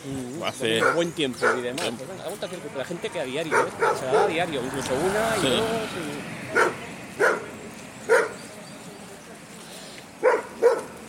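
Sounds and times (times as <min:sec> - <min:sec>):
speech: 0:00.0 - 0:07.4
dog barking at people passing by: 0:00.8 - 0:01.8, 0:03.4 - 0:04.5, 0:06.5 - 0:07.5, 0:08.1 - 0:08.5, 0:10.2 - 0:11.0.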